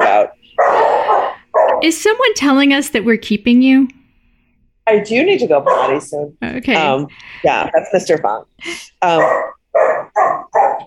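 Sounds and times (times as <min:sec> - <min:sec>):
dog barking: 0:00.0 - 0:01.8, 0:05.6 - 0:06.1, 0:09.1 - 0:10.8
speech: 0:01.8 - 0:04.0, 0:04.9 - 0:10.0.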